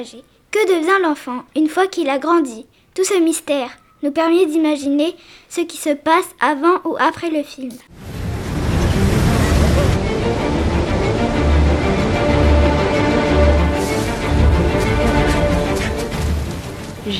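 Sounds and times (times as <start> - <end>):
speech: 0.0 - 8.2
gusting wind in a storm: 7.9 - 17.1
stormy ocean waves crashing: 7.9 - 17.1.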